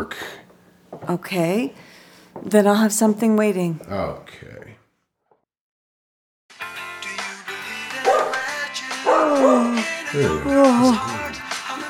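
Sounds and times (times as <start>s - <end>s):
speech: 1.1s - 4.6s, 10.1s - 11.2s
dog barking, yipping and whining: 9.1s - 9.8s.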